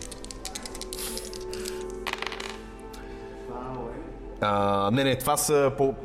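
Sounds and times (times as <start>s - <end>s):
plastic ten-sided dice rattling across a hard surface: 0.0s - 2.7s
speech: 4.4s - 6.0s.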